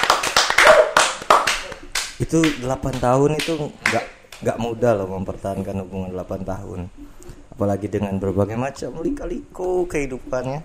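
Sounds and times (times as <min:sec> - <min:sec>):
small group applauding: 0:00.0 - 0:04.5
speech: 0:02.2 - 0:10.6.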